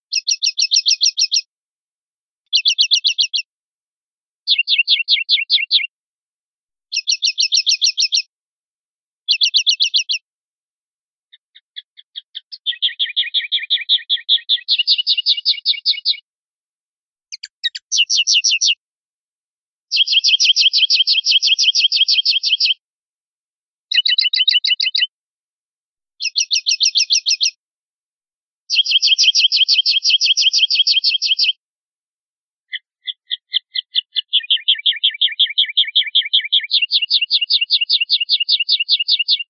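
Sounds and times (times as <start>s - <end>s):
linnet chachases song: 0.1s - 1.5s, 2.4s - 3.5s, 4.5s - 5.9s, 6.9s - 8.3s, 9.3s - 10.3s, 11.3s - 16.3s, 17.3s - 18.8s, 19.9s - 22.8s, 23.9s - 25.2s, 26.2s - 27.6s, 28.7s - 31.6s, 32.7s - 39.4s.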